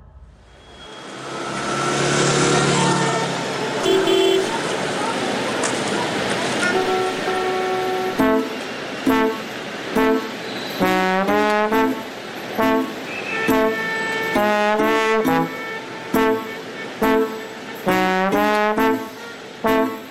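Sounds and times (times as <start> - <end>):
dense street traffic rumbling: 0.0 - 20.1
car horns honking: 2.5 - 4.7, 6.6 - 20.1.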